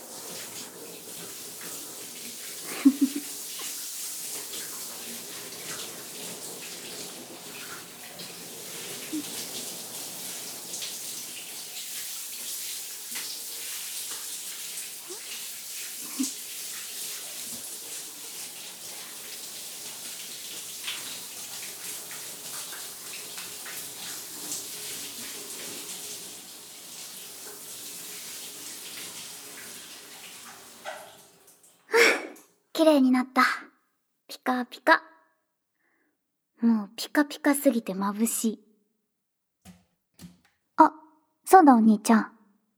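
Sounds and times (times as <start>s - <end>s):
running water rinsing off soap suds: 0.0s - 32.4s
speech: 32.8s - 33.7s, 34.4s - 35.1s, 36.6s - 38.6s, 41.6s - 42.4s.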